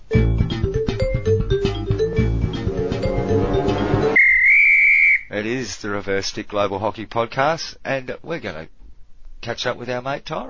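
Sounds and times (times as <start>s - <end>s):
podcast sting jingle with rhythmic hits: 0.1s - 4.2s
sustained high whistle-like tone: 4.1s - 5.3s
speech: 5.4s - 8.8s, 9.4s - 10.4s.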